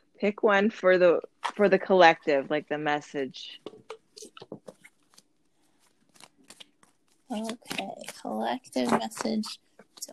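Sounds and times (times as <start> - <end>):
speech: 0.2 - 4.6, 7.3 - 10.1
oracle cards being shuffled by hand: 3.6 - 10.0.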